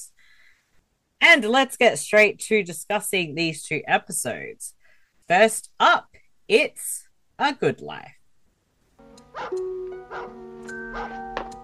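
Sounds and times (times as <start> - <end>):
speech: 1.2 - 8.2, 9.4 - 10.4
collie dog barking: 9.3 - 11.3.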